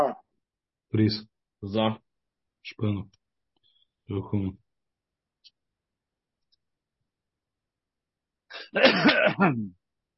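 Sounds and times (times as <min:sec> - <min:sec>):
speech: 0:00.9 - 0:02.0, 0:02.6 - 0:03.2, 0:04.1 - 0:04.6, 0:08.7 - 0:09.8
person coughing or clearing throat in a committee meeting: 0:08.6 - 0:09.6.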